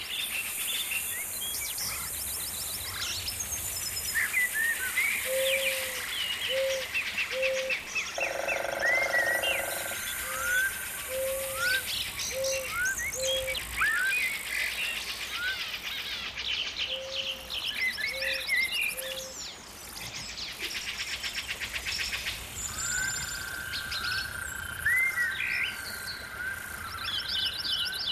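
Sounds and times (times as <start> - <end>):
forest ambience: 0.0 - 28.0.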